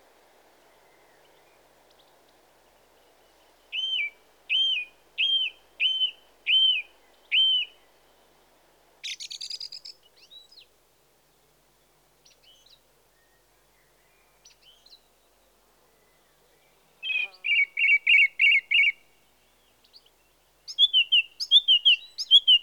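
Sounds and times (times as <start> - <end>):
song thrush song: 0.0 - 22.6.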